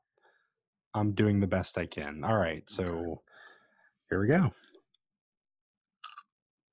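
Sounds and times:
speech: 0:01.0 - 0:03.3, 0:04.1 - 0:04.8
faint small crunch: 0:06.0 - 0:06.3.

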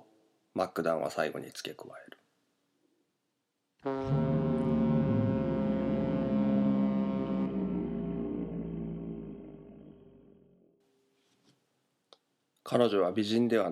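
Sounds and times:
speech: 0:00.6 - 0:02.2, 0:03.8 - 0:04.2, 0:12.7 - 0:13.6
foghorn sounding over the sea: 0:03.8 - 0:10.5.

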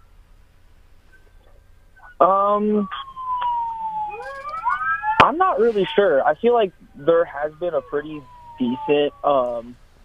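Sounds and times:
emergency vehicle siren wailing: 0:02.0 - 0:09.8
speech: 0:02.2 - 0:03.0, 0:05.3 - 0:09.8.

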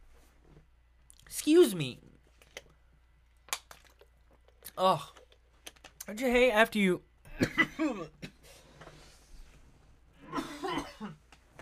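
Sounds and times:
speech: 0:01.4 - 0:02.1, 0:04.8 - 0:05.2, 0:06.1 - 0:08.3
person with a dry throat coughing dryly: 0:07.3 - 0:08.4, 0:10.2 - 0:11.2.

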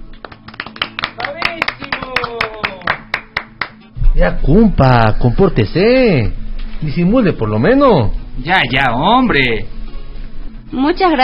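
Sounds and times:
small audience clapping: 0:00.0 - 0:03.8
speech: 0:01.5 - 0:01.8, 0:04.2 - 0:09.7, 0:10.7 - 0:11.2.

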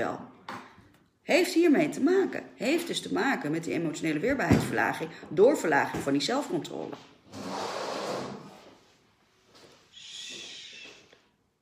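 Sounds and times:
speech: 0:00.0 - 0:00.3, 0:01.3 - 0:07.5
rough grinding scrape across a hard floor: 0:07.0 - 0:11.0.

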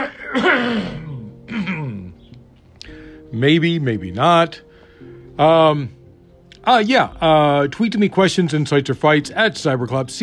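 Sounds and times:
speech: 0:00.0 - 0:01.8, 0:03.3 - 0:04.7, 0:05.4 - 0:06.0, 0:06.6 - 0:10.2
hoarse-voiced person clearing throat and coughing: 0:00.0 - 0:02.2.

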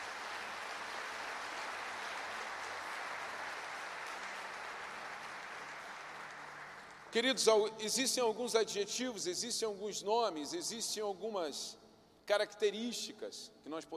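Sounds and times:
large audience applauding: 0:00.0 - 0:07.2
speech: 0:07.1 - 0:13.9.

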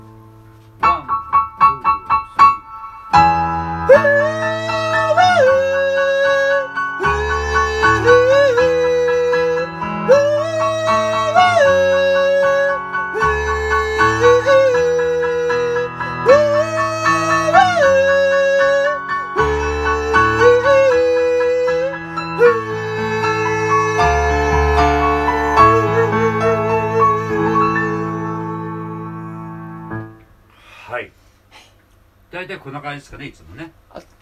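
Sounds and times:
keyboard-like chords: 0:00.0 - 0:30.5
falsetto voice singing vowel phrases in a vocal training exercise: 0:03.9 - 0:29.2
speech: 0:32.9 - 0:33.7.

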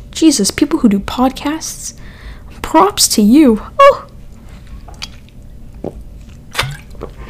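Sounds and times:
speech: 0:00.2 - 0:04.1
person drinking water with wet swallowing and slurping: 0:04.3 - 0:07.2.

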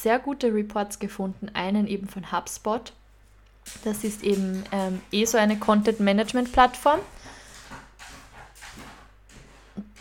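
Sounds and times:
speech: 0:00.0 - 0:03.0, 0:03.7 - 0:07.4
dog scratching at a door: 0:03.7 - 0:10.0.

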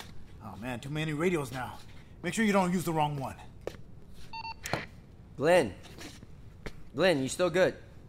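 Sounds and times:
speech: 0:00.5 - 0:03.5, 0:05.4 - 0:06.0, 0:06.9 - 0:07.9
electronic keypad dialing tones: 0:04.3 - 0:04.8.

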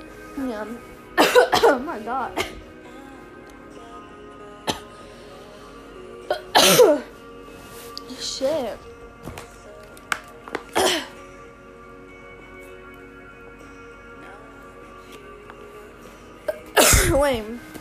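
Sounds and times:
speech: 0:00.4 - 0:02.6, 0:06.6 - 0:07.1, 0:08.2 - 0:09.4, 0:17.2 - 0:17.7
harsh coughing after choking on water: 0:01.2 - 0:02.6, 0:04.6 - 0:05.0, 0:06.3 - 0:07.1, 0:10.7 - 0:11.2, 0:16.5 - 0:17.3.

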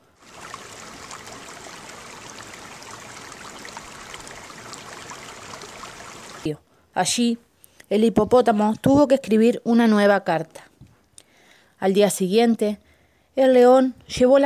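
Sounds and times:
river water flowing: 0:00.0 - 0:06.5
splash-like bump: 0:00.0 - 0:06.5
speech: 0:06.4 - 0:10.7, 0:11.8 - 0:12.8, 0:13.4 - 0:14.4.

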